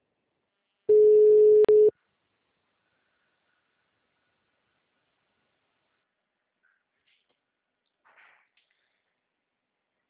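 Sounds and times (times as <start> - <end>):
telephone dial tone while placing a call: 0.9 - 1.9.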